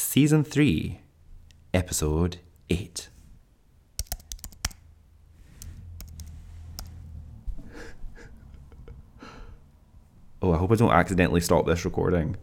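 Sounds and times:
speech: 0.1s - 1.0s, 1.7s - 3.1s, 10.4s - 12.4s
typing on a computer keyboard: 4.0s - 4.8s, 6.0s - 6.9s.

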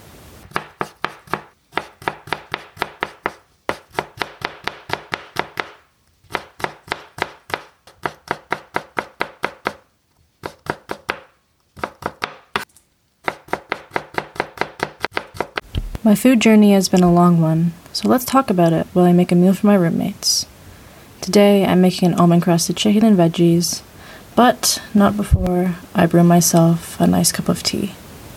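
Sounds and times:
knife chopping vegetables for a meal: 0.5s - 9.8s, 10.4s - 16.0s
speech: 16.0s - 20.5s, 21.3s - 28.0s.

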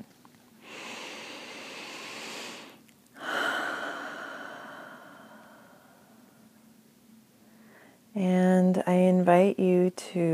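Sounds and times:
deep breathing in through nose, out through mouth: 0.6s - 6.6s
speech: 8.2s - 10.3s.

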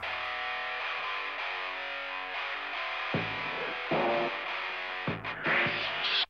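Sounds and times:
loud distorted rock guitar: 0.0s - 6.2s
off-kilter kick drum thumps in a rock song intro: 3.2s - 3.5s.

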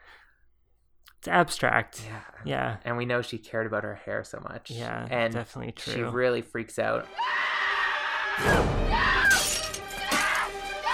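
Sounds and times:
speech: 1.2s - 7.6s, 8.4s - 9.5s
mirror with lipstick writing punched and smashed: 9.1s - 10.6s
breaking glass jangling: 9.3s - 10.4s.

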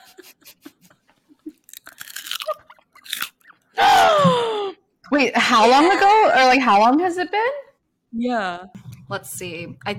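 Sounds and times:
crunchy food being bitten and chewed: 1.5s - 3.5s
speech: 5.1s - 9.9s.

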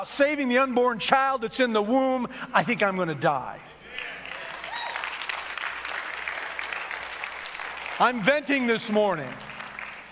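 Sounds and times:
speech: 0.0s - 4.2s, 8.0s - 9.5s
audience clapping: 3.9s - 10.0s.

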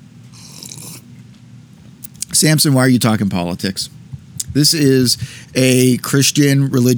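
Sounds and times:
low hum: 0.0s - 6.9s
slurping sip of coffee: 0.3s - 1.3s, 2.0s - 2.3s
speech: 2.4s - 6.9s.

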